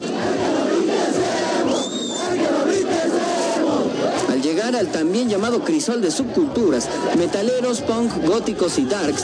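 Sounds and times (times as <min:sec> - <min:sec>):
large crowd chanting a rhythmic jeering taunt: 0:00.0 - 0:09.2
sharp whistle: 0:01.7 - 0:02.3
speech: 0:04.7 - 0:09.2.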